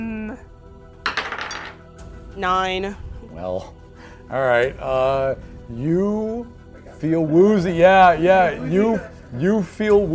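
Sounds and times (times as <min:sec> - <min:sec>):
dice rolling for a constitution save: 0:01.1 - 0:01.8
speech: 0:02.4 - 0:10.1.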